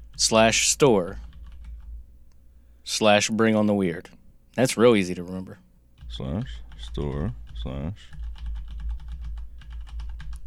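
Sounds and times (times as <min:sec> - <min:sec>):
speech: 0:00.2 - 0:01.3, 0:02.9 - 0:08.2
typing on a mechanical computer keyboard: 0:01.2 - 0:01.9, 0:06.3 - 0:10.4.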